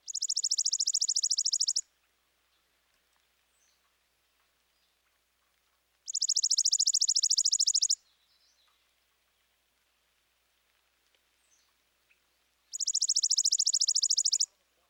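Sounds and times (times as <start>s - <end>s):
chipping sparrow singing dry mechanical trills: 0.0s - 1.9s, 6.0s - 8.8s, 12.7s - 14.6s.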